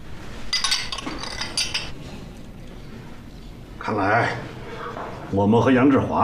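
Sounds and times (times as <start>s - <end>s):
low hum: 0.0s - 6.2s
glasses clinking in a toast: 0.5s - 2.0s
speech: 3.9s - 4.6s, 5.3s - 6.2s.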